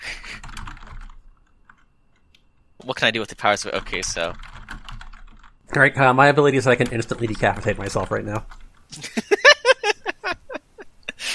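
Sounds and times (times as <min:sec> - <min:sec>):
rapid typing on a computer keyboard: 0:00.2 - 0:02.4, 0:03.5 - 0:05.6, 0:06.7 - 0:08.8
speech: 0:02.8 - 0:04.5, 0:05.8 - 0:09.2
laughter: 0:08.9 - 0:11.3.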